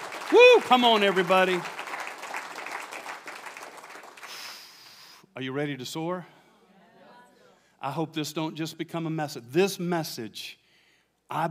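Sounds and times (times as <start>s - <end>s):
audience clapping hands in a large room: 0.0s - 4.8s
speech: 0.3s - 1.8s, 5.4s - 6.4s, 7.8s - 10.6s, 11.3s - 11.4s.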